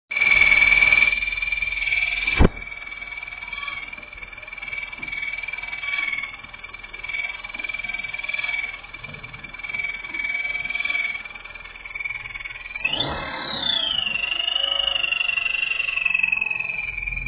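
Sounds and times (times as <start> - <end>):
engine chirp: 0.1 - 17.2
panda noise: 12.8 - 15.3.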